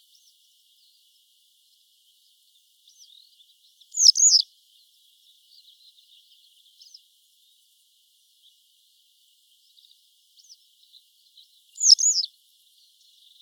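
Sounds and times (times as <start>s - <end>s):
faint scattered chirps: 0.0s - 13.4s
western yellow wagtail Motacilla flava calls: 2.8s - 7.1s, 9.6s - 13.4s.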